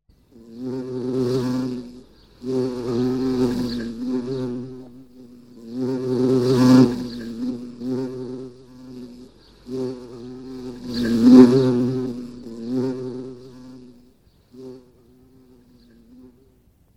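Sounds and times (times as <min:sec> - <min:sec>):
bumblebee buzzing: 0:00.2 - 0:16.4.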